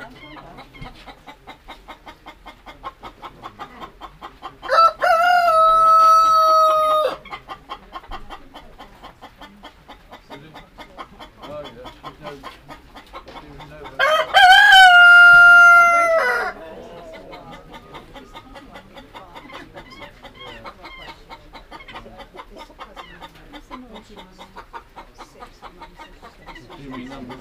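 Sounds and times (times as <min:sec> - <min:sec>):
hens clucking: 0:00.0 - 0:27.4
rooster crowing: 0:04.7 - 0:07.2, 0:14.0 - 0:16.6.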